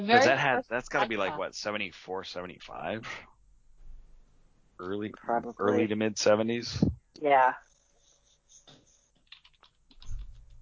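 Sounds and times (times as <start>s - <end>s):
speech: 0.0s - 3.3s, 4.8s - 7.7s
laughter: 0.1s - 3.2s
person typing on a computer keyboard to look something up online: 8.6s - 10.5s.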